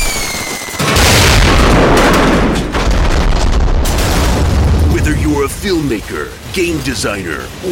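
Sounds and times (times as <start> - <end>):
high whistle: 0.0 - 0.8
loud explosion: 0.0 - 5.6
roaring rumble of debris and fire: 0.6 - 7.7
speech: 5.6 - 7.7.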